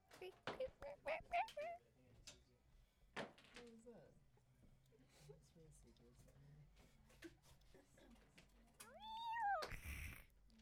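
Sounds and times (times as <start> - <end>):
speech: 0.2 - 1.9, 3.6 - 4.3, 4.9 - 8.3
cat yowling: 8.9 - 10.2.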